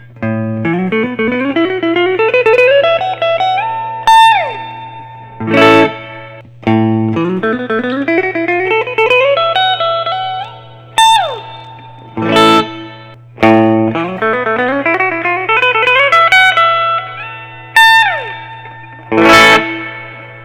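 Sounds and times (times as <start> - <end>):
custom carve top electric guitar with natural burst finish: 0.0 - 20.4.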